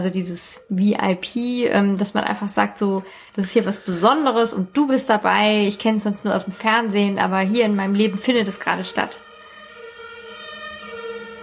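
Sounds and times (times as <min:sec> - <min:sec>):
speech: 0:00.0 - 0:09.3
emergency vehicle siren: 0:06.2 - 0:11.4.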